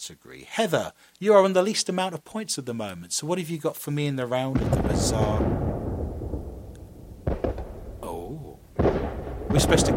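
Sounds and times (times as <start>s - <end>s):
speech: 0.0s - 5.8s, 9.6s - 9.9s
fireworks rumbling: 4.5s - 9.9s.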